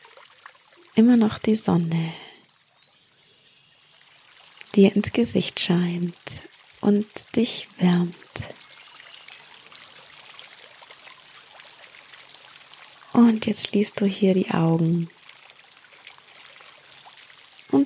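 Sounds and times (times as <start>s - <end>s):
small stream babbling: 0.0s - 17.8s
speech: 1.0s - 2.2s, 4.8s - 8.5s, 13.2s - 15.2s.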